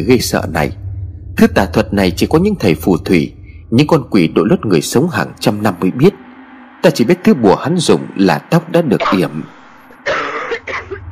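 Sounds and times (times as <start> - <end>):
speech: 0.0 - 0.8, 1.4 - 6.2, 6.8 - 9.6
person coughing harshly with throaty rasping: 10.0 - 11.1.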